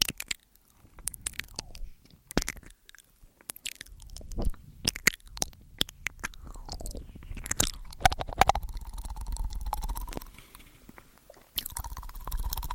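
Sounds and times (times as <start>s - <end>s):
wet ear-eating mouth sounds with clicks and squishes: 0.0s - 12.7s.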